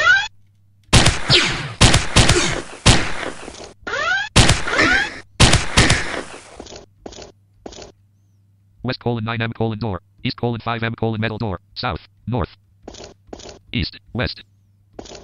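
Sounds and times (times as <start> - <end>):
low steady hum: 0.0 - 15.2
revolver gunshots in a video game: 0.9 - 3.6, 4.4 - 6.5
speech: 8.8 - 12.6, 13.7 - 14.5.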